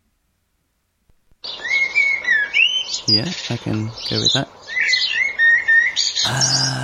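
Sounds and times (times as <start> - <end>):
blackbird singing: 1.4 - 6.8
speech: 3.1 - 4.8, 6.2 - 6.8.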